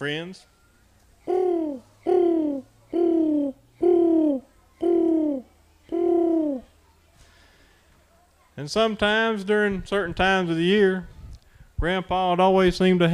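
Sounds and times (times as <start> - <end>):
speech: 0.0 - 0.6, 8.6 - 11.1, 11.8 - 13.1
faint low hum: 0.0 - 8.5
pigeons cooing: 1.2 - 6.8.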